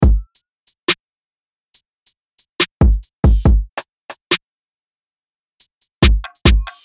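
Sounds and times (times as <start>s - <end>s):
UK drill and grime beat: 0.0s - 1.0s, 1.8s - 4.4s, 5.6s - 6.8s.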